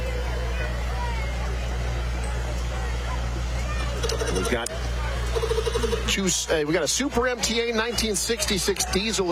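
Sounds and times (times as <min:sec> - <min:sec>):
crowd murmuring: 0:00.0 - 0:09.1
1950 IH Farmall tractor engine droning: 0:03.8 - 0:06.5
speech: 0:04.3 - 0:09.3.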